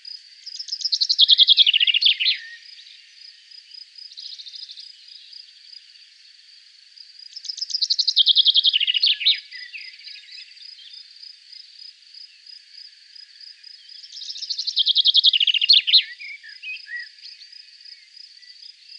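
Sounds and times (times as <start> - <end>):
Common chaffinch singing: 0.0 - 3.0, 7.3 - 11.0, 13.8 - 18.9.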